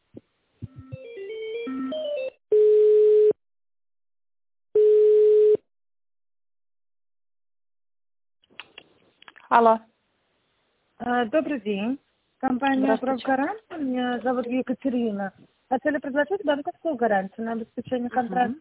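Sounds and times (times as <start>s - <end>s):
telephone ringback tone while a call connects: 0.7s - 3.4s, 4.8s - 5.6s
speech: 9.5s - 9.9s, 11.1s - 18.5s.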